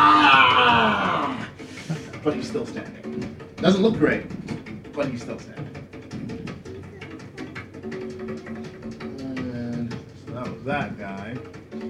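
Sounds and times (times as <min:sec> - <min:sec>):
man screaming: 0:00.0 - 0:01.6
speech: 0:02.2 - 0:04.4, 0:05.0 - 0:05.8, 0:10.6 - 0:11.6.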